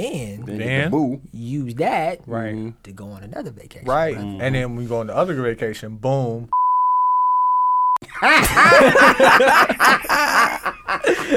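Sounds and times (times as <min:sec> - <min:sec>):
speech: 0:00.0 - 0:06.6, 0:08.2 - 0:10.6
high-pitched censor bleep: 0:06.6 - 0:08.0
laughter: 0:08.0 - 0:11.3.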